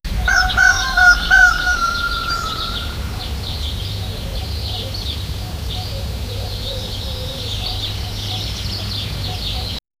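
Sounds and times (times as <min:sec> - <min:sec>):
peaceful village ambience early in the morning: 0:00.1 - 0:09.8.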